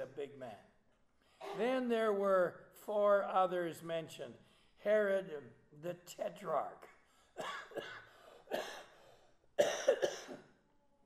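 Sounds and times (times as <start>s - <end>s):
speech: 0.2s - 0.8s, 1.4s - 8.8s
person coughing and sputtering with raspy coughs: 7.4s - 8.9s, 9.6s - 10.5s.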